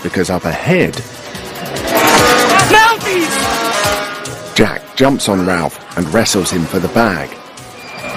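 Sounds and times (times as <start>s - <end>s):
speech: 0.1s - 1.2s, 2.2s - 7.4s
engines of several off-road 4x4 vehicles rumbling and whining as they approach: 1.0s - 4.8s.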